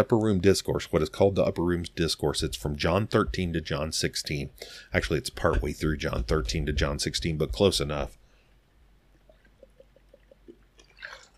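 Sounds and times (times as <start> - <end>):
speech: 0.0 - 8.2
breathy exhale: 4.6 - 4.9
person gulping water: 9.2 - 11.3.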